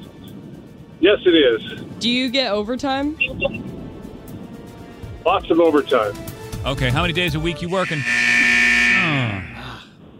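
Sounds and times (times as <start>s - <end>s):
speech: 1.0s - 3.8s, 5.2s - 8.5s
game show buzzer: 7.7s - 9.6s.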